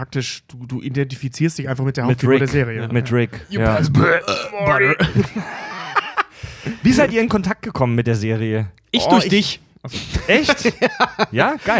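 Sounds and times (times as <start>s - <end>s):
speech: 0.0s - 5.6s, 6.8s - 11.7s
voiced speech-like tones: 2.0s - 5.2s, 8.9s - 10.6s
person burping: 3.6s - 5.2s
laughter: 4.7s - 7.2s, 9.0s - 11.7s.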